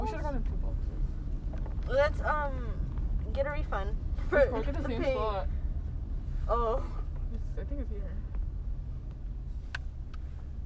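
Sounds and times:
parked car engine idling: 0.0 - 10.6
speech: 1.9 - 5.6, 6.5 - 7.0, 7.6 - 8.3.

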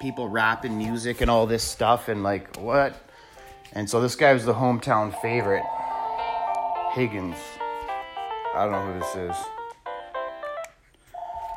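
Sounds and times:
speech: 0.0 - 3.1, 3.7 - 5.8, 6.9 - 7.6, 8.6 - 9.6
home telephone ringing with buzzy electronic tones: 5.0 - 7.7, 11.2 - 11.5.

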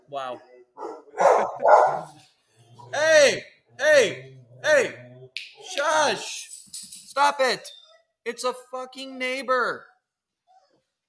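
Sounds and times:
speech: 0.1 - 5.0, 5.6 - 6.5, 7.2 - 9.9
dogs barking with throaty barks: 0.8 - 2.2.

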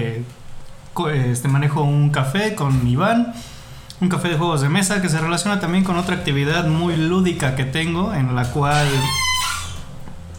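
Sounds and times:
speech: 0.0 - 0.4, 1.0 - 9.3
steady low hum: 0.0 - 10.3
refrigerator squeak: 8.5 - 10.0.

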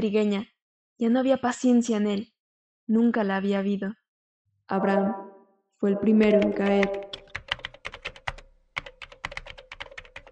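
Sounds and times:
speech: 0.0 - 2.3, 2.9 - 4.0, 4.7 - 5.2, 5.8 - 7.1
typing on a computer keyboard: 6.2 - 10.3.

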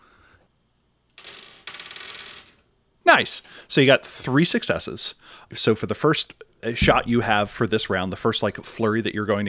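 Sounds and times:
four ten-sided dice rattling across a hard surface: 1.2 - 2.7
speech: 3.1 - 9.4.

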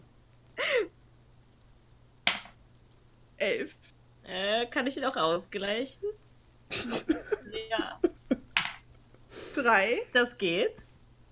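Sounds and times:
dice clacking as they land: 2.3 - 2.6
speech: 3.4 - 8.0, 9.6 - 10.8.

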